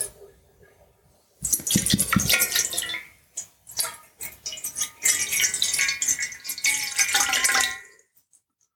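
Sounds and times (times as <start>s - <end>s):
water poured from a bottle into a small dish: 1.4s - 8.1s.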